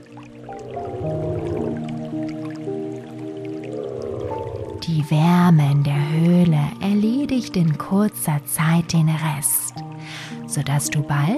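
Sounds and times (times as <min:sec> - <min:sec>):
water dripping and splashing in a cave: 0:00.0 - 0:06.6, 0:09.3 - 0:11.3
speech: 0:04.9 - 0:09.8, 0:10.6 - 0:11.3.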